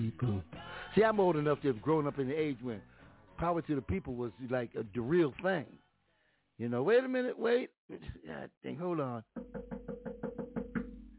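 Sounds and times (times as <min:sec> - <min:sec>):
speech: 0:00.1 - 0:05.8, 0:06.6 - 0:09.8
knocking on a door: 0:09.4 - 0:11.0.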